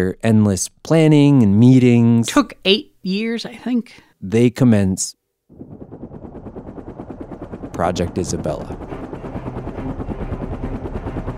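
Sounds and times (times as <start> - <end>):
speech: 0.0 - 6.1, 7.8 - 9.0
helicopter turbine engine whine: 5.5 - 11.3
rotor chop of a small single-turbine five-blade MD-500 helicopter: 5.5 - 11.3.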